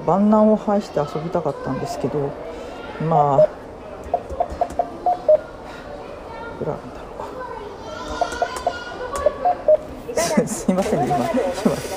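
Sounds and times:
speech: 0.0s - 3.6s
busy noise: 0.0s - 11.9s
electronic ATM keypad beeps: 4.1s - 5.4s, 8.2s - 9.9s
laughter: 10.1s - 11.9s.

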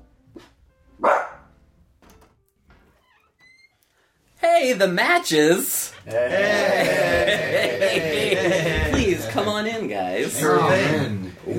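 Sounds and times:
dog barking: 1.0s - 1.5s
speech: 4.6s - 11.5s
laughter: 6.0s - 11.5s.

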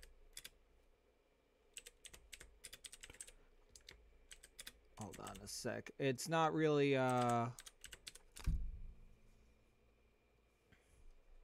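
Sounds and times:
typing on a computer keyboard: 0.0s - 0.6s, 1.8s - 5.5s, 7.1s - 8.5s
speech: 5.0s - 7.7s.

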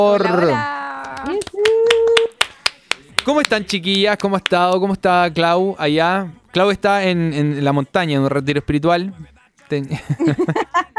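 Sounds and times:
speech: 0.0s - 1.4s, 3.3s - 10.9s
hands clapping: 0.9s - 5.0s
laughter: 9.8s - 10.9s.

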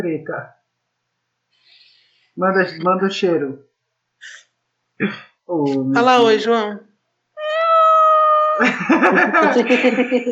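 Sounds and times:
speech: 0.0s - 0.6s, 2.4s - 4.4s, 5.0s - 6.9s, 8.6s - 10.2s
cat meowing: 7.4s - 8.6s
laughter: 8.6s - 10.2s.

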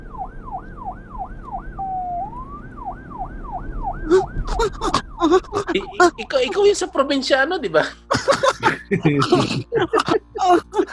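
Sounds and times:
police patrol car siren wailing in yelp cycles: 0.0s - 7.5s
low traffic rumble: 0.0s - 10.9s
laughter: 4.1s - 6.9s, 7.9s - 10.9s
speech: 4.6s - 10.9s.

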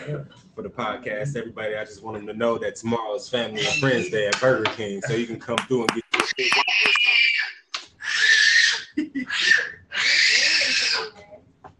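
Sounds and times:
speech: 0.0s - 6.9s
baby screeching: 3.6s - 4.1s, 6.3s - 11.2s.

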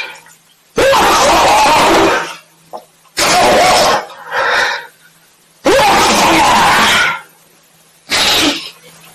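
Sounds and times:
sneeze: 0.8s - 2.4s, 3.2s - 4.1s, 5.6s - 7.2s, 8.1s - 8.8s.

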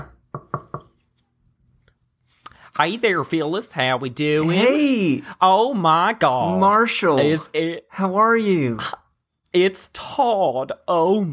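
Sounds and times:
knocking on a house's front door: 0.0s - 0.9s
speech: 2.8s - 11.3s.

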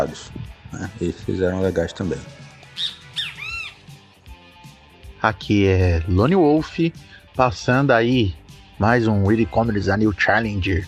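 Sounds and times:
speech: 0.0s - 3.0s, 5.2s - 10.8s
bird squawks: 2.6s - 4.0s
bird warbling screech: 2.8s - 3.9s.

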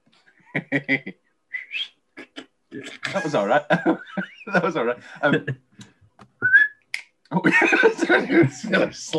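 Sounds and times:
speech: 0.5s - 1.9s, 2.7s - 5.7s, 7.3s - 9.1s
person talking or laughing loudly into the microphone: 0.6s - 1.1s, 1.7s - 5.8s, 7.3s - 9.1s
person whistling: 1.6s - 1.9s, 6.4s - 6.8s.

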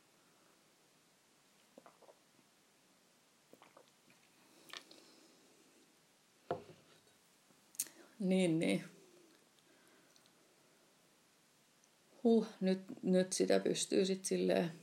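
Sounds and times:
sipping tea from a cup: 1.6s - 2.4s, 3.5s - 5.2s
swallowing: 3.5s - 5.0s
speech: 8.2s - 8.9s, 12.3s - 14.8s.

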